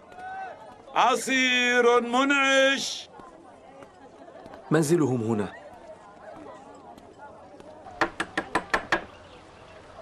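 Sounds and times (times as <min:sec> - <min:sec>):
speech: 0:01.0 - 0:03.1, 0:04.7 - 0:05.6
quick knocks on a door: 0:08.0 - 0:09.1.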